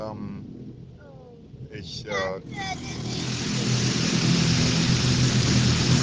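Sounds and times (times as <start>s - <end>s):
speech: 1.8s - 4.0s
automatic car wash machinery rumble: 1.8s - 6.0s
spraying water in an automatic car wash: 2.8s - 6.0s.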